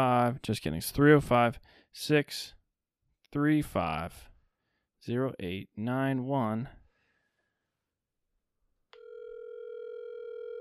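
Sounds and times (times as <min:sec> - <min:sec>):
speech: 0:00.0 - 0:02.6, 0:03.3 - 0:04.3, 0:05.0 - 0:06.8
continuous electronic telephone line tone: 0:09.0 - 0:10.5.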